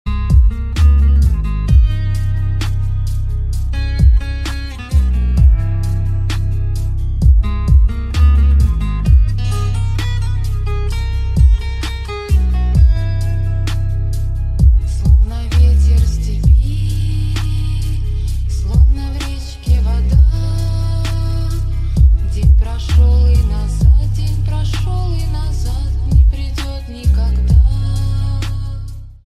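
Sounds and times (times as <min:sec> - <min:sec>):
bass-boosted remix music: 0:00.0 - 0:29.2.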